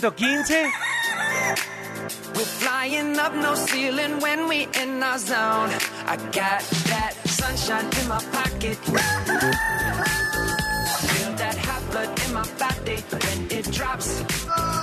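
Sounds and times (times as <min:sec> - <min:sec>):
speech: 0:00.0 - 0:10.1, 0:12.0 - 0:14.8
rooster crowing: 0:00.4 - 0:01.6, 0:08.9 - 0:11.1
busy music with a steady driving beat: 0:01.0 - 0:14.8.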